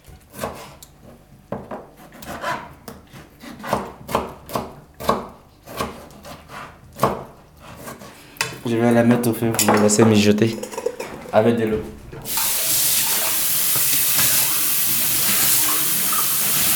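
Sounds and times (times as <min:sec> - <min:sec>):
knife chopping a tomato on a board: 0:00.2 - 0:08.6
speech: 0:08.7 - 0:12.4.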